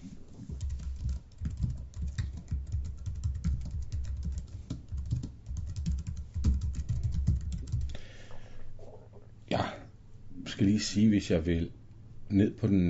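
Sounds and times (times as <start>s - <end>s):
rapid typing on a computer keyboard while editing a wiki page: 0.5s - 8.0s
speech: 10.6s - 12.8s.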